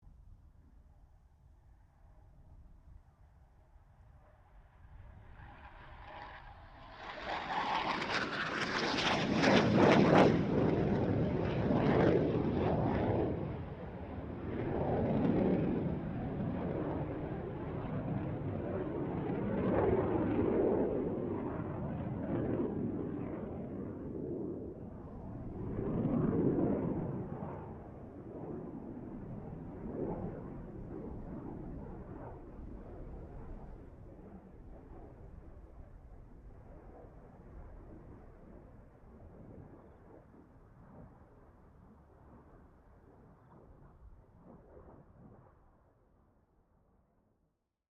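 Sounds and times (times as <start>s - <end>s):
BAE Hawk 127 jet aircraft passing: 4.8s - 34.3s.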